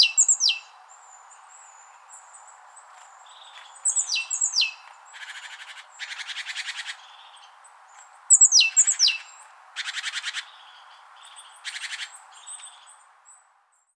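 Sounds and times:
great tit calling, Parus major: 0.0 - 0.7, 3.3 - 7.6, 8.3 - 13.0.

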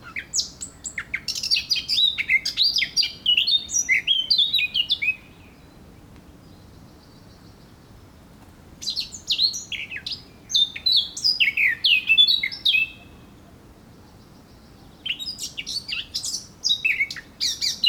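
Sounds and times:
Eurasian blackcap Sylvia atricapilla warbling song: 0.0 - 5.3, 8.8 - 13.2, 15.0 - 17.8.

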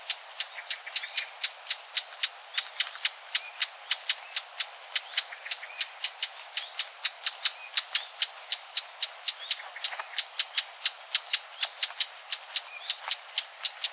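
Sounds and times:
Eurasian blackcap Sylvia atricapilla giving clicking tac calls: 0.0 - 13.9.

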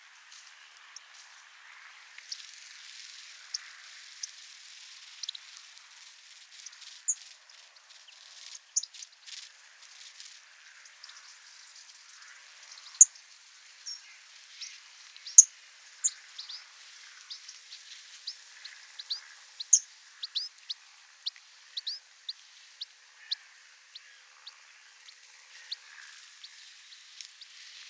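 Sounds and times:
soft steady hiss: 0.0 - 27.8
European Goldfinch Carduelis carduelis calls: 18.3 - 24.6.

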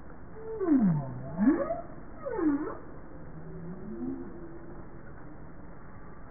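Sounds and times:
faint low tonal hums: 0.0 - 6.2
Bowhead whale moaning calls: 0.4 - 4.8.

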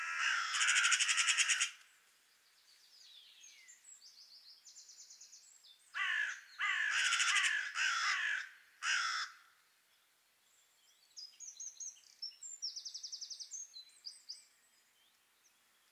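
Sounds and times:
carrion crow Corvus corone cawing: 0.0 - 1.8, 6.0 - 9.5.

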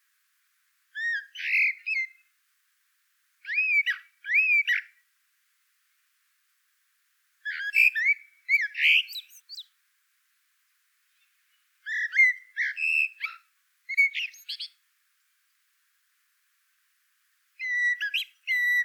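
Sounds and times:
common blackbird twittering whistled notes: 1.0 - 2.2, 3.4 - 4.9, 7.5 - 9.7, 11.8 - 14.8, 17.6 - 18.8.

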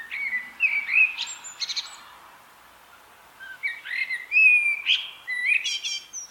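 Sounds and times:
common blackbird Turdus merula song of flute-like warbled notes: 0.0 - 2.2, 2.9 - 6.2.

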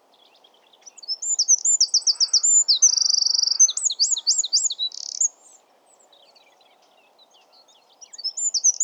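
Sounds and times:
Eurasian wren Troglodytes troglodytes song: 0.3 - 5.6, 8.0 - 8.8.

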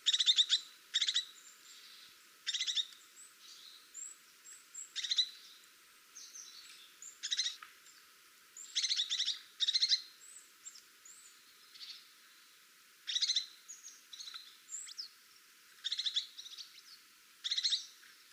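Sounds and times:
Crested tit Lophophanes cristatus giving buzzy trilled phrases: 0.0 - 3.8, 4.9 - 5.4, 6.2 - 7.6, 8.6 - 10.1, 13.1 - 15.0, 15.8 - 16.8, 17.4 - 17.9.

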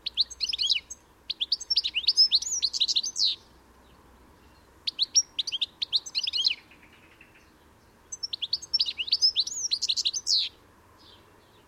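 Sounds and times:
European goldfinch Carduelis carduelis tinkling twittering: 0.0 - 3.4, 4.9 - 7.5, 8.1 - 11.2.

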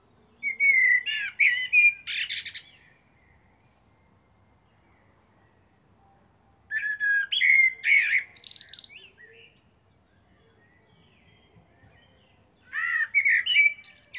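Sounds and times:
common blackbird Turdus merula song phrase: 0.0 - 14.1.

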